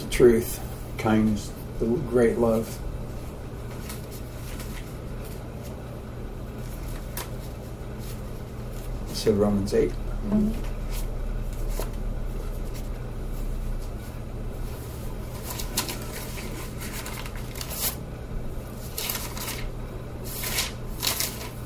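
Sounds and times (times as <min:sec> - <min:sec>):
steady low hum: 0:00.0 - 0:21.6
speech: 0:00.2 - 0:02.9, 0:09.2 - 0:10.7
thin paper pages rustling as they are pulled apart: 0:03.6 - 0:05.9, 0:06.5 - 0:09.2, 0:10.5 - 0:18.0, 0:18.6 - 0:21.6.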